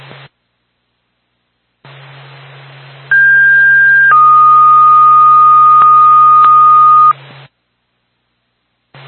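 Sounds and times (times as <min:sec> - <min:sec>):
Sugar Hill Fire Department dispatch paging tones over a radio channel: 0:03.1 - 0:07.1.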